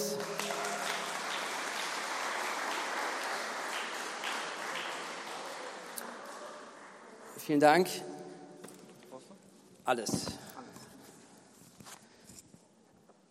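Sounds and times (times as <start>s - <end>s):
audience applause: 0.0s - 7.2s
speech: 7.4s - 8.1s, 9.9s - 10.4s.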